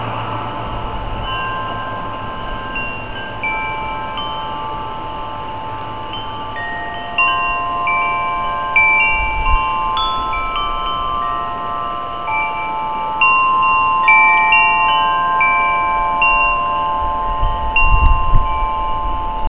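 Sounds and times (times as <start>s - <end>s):
altar chimes: 0.0s - 19.5s.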